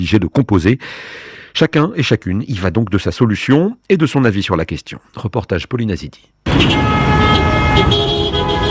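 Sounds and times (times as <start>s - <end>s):
speech: 0.0s - 8.1s
car horns honking on a main boulevard in Kinshasa: 6.4s - 8.6s.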